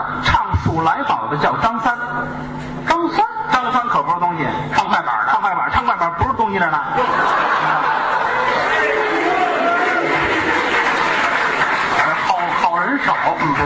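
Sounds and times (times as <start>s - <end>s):
speech: 0.1s - 8.0s
scattered audience laughter: 7.0s - 13.0s
live audience applauding: 7.5s - 13.6s.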